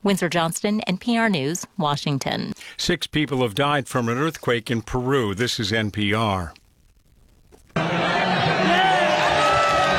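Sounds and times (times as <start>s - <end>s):
speech: 0.0s - 6.6s
large crowd cheering and roaring: 7.8s - 9.9s.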